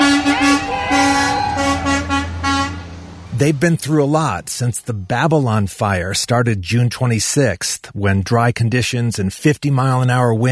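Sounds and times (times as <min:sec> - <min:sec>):
fire truck horns honking in long blasts and short toots: 0:00.0 - 0:04.4
steady low fire truck engine rumble: 0:00.0 - 0:06.8
speech: 0:03.4 - 0:10.4.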